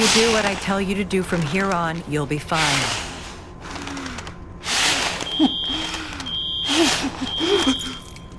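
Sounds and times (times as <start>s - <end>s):
speech: 0.0s - 3.1s
smoke alarm beeping during a fire in an office: 5.2s - 8.3s.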